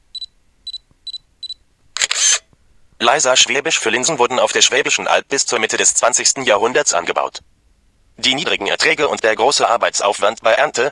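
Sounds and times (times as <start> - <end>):
camera beeps: 0.2 - 2.5
camera shutter burst: 2.0 - 2.5
speech: 3.0 - 7.5, 8.2 - 10.8.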